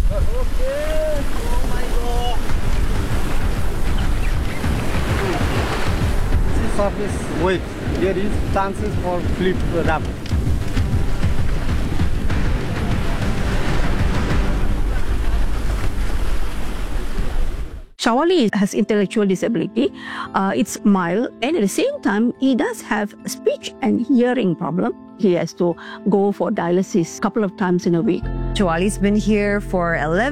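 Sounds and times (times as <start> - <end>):
rain: 0.0 - 6.4, 7.1 - 17.9
rough fast-moving water churning in high waves: 0.0 - 17.9
strong wind buffeting the microphone: 0.0 - 17.9
speech: 0.4 - 1.3, 6.8 - 10.2, 18.0 - 30.3.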